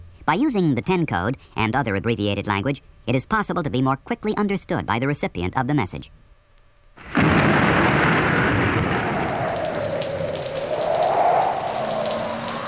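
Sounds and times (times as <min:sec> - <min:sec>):
speech: 0:00.3 - 0:06.2
heavy rain drumming on a car windshield: 0:07.0 - 0:12.6
low rumble: 0:07.1 - 0:12.6.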